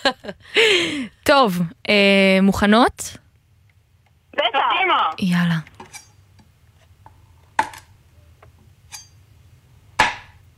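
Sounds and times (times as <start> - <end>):
speech: 0.0 - 3.2, 4.4 - 5.7
quiet hum: 0.0 - 10.5
knife chopping on a cutting board: 10.0 - 10.4.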